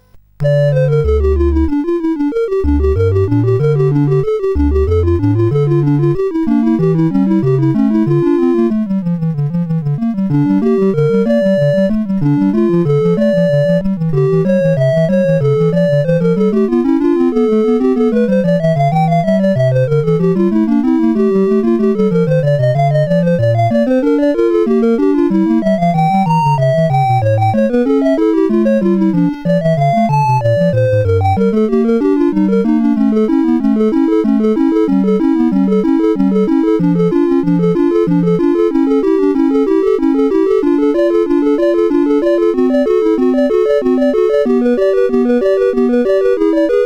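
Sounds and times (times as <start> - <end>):
retro game music: 0.0 - 46.8.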